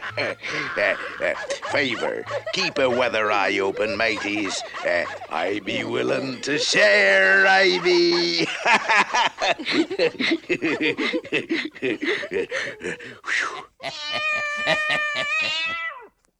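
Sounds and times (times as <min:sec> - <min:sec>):
laughter: 0:00.0 - 0:15.8
speech: 0:00.1 - 0:15.9
cat meowing: 0:13.8 - 0:16.2.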